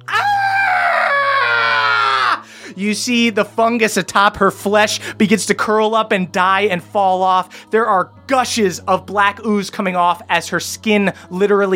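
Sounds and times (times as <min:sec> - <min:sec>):
woman shrieking after being struck with an axe: 0:00.0 - 0:02.4
speech: 0:02.8 - 0:11.7.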